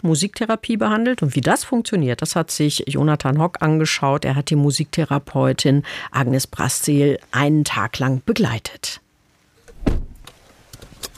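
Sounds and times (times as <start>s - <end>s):
speech: 0.0s - 9.0s
red Opel Corsa car door thump: 9.7s - 10.3s.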